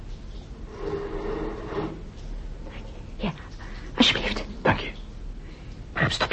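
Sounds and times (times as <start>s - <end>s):
faint hiss: 0.0s - 6.3s
wooden desk drawer sliding open: 0.6s - 2.1s.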